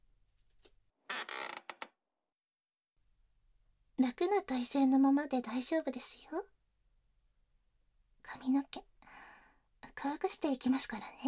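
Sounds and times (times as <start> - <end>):
salon chair creaking as it is raised: 1.1 - 1.8
speech: 4.0 - 6.5, 10.1 - 11.2.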